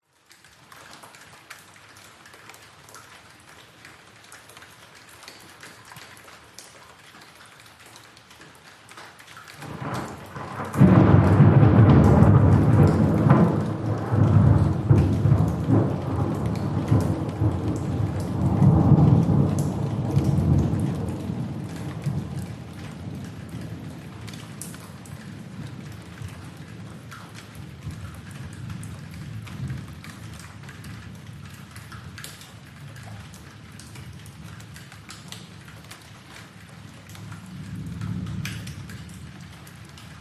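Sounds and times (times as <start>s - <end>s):
rain dripping: 0.0s - 40.1s
thunder rumble: 9.6s - 27.0s.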